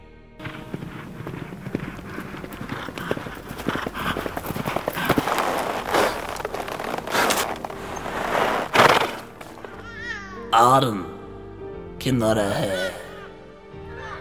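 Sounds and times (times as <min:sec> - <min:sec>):
heavy hoof thuds: 0:00.4 - 0:09.8
horse hooves galloping: 0:00.4 - 0:09.8
speech: 0:10.8 - 0:11.1, 0:12.0 - 0:13.0.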